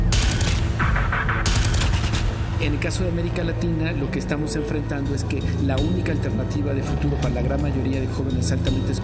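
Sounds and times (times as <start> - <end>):
machine-gun fire: 0.1 - 2.5
speech: 2.7 - 9.0.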